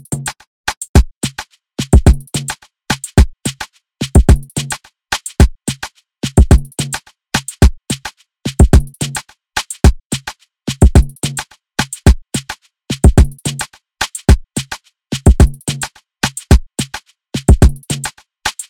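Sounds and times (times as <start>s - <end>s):
afro drum beat: 1.0s - 18.6s.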